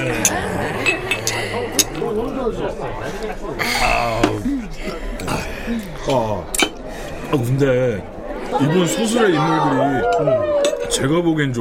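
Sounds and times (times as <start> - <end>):
glasses clinking together in a toast: 0.0 - 2.0
laughter: 0.0 - 11.0
murmur of people chatting: 0.0 - 11.5
speech: 2.5 - 6.6, 7.3 - 11.5.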